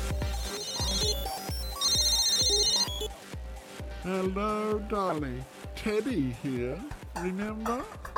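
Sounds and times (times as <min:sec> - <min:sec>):
bouncy electronic phone ringtone with thumping beat: 0:00.2 - 0:03.2
speech: 0:04.1 - 0:08.0.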